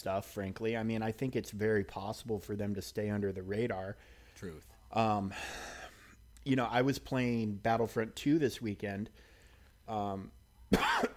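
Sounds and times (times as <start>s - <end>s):
speech: 0.0s - 5.8s, 6.4s - 9.3s, 9.9s - 11.1s
brief voiced hum: 2.0s - 11.1s
loud cough: 10.7s - 11.1s.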